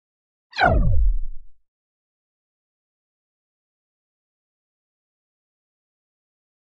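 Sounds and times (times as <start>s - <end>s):
flanged laser pulse: 0.6s - 1.6s.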